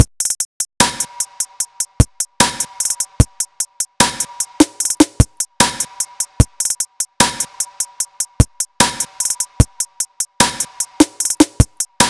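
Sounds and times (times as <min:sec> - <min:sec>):
drum loop: 0:00.0 - 0:12.0.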